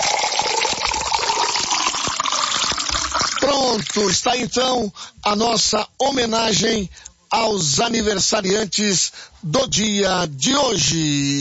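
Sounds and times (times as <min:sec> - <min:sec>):
water pouring into a glass: 0:00.0 - 0:04.2
speech: 0:03.6 - 0:11.3.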